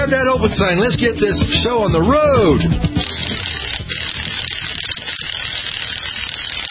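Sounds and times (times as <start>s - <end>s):
speech: 0.1s - 2.9s
lug wrench turning in a greasy garage: 2.9s - 6.6s.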